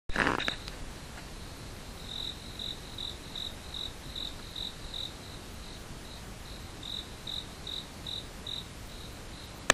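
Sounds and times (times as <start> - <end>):
insects chirping: 0.2 - 9.7.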